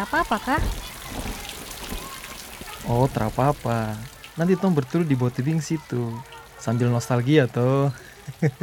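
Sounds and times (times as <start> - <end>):
speech: 0.0 - 1.2, 2.8 - 8.6
low thuds and splashes: 0.0 - 4.4
heavy rain pouring down: 0.0 - 8.6
laughter: 8.0 - 8.6.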